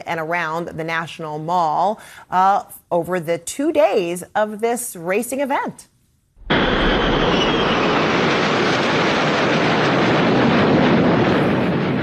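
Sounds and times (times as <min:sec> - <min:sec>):
speech: 0:00.0 - 0:05.9
aircraft flying over a street race around the National Mall: 0:06.4 - 0:12.0.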